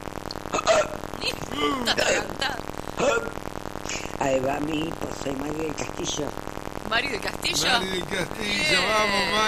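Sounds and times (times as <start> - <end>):
boy hiccuping loudly: 0.6 - 3.3
speech: 1.2 - 9.4.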